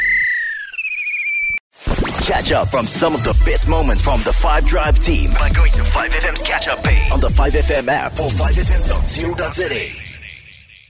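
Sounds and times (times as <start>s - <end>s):
referee's whistle blast: 0.0s - 1.6s
speech: 2.3s - 10.0s.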